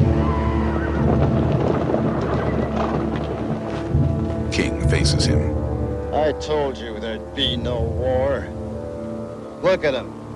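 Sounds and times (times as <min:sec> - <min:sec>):
horse whinnying: 0:00.0 - 0:03.1
rumble of hooves of riders galloping horses over a hill: 0:00.0 - 0:09.5
speech: 0:06.2 - 0:08.6, 0:09.6 - 0:10.2.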